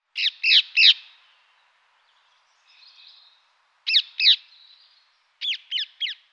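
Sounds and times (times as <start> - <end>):
Halsbandsittich Psittacula krameri calls: 0.2 - 1.1, 3.9 - 4.5, 5.4 - 6.2.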